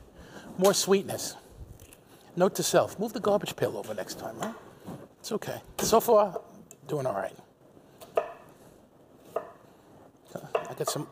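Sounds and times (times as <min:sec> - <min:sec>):
speech: 0:00.6 - 0:01.4, 0:02.4 - 0:04.6, 0:05.2 - 0:07.4, 0:10.8 - 0:11.1
knife chopping through an onion on a cutting surface: 0:10.4 - 0:11.1.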